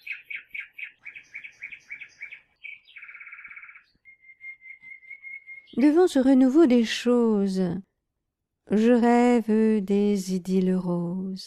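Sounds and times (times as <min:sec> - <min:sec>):
birds twittering: 0:00.0 - 0:05.9
speech: 0:05.8 - 0:07.9, 0:08.7 - 0:11.4.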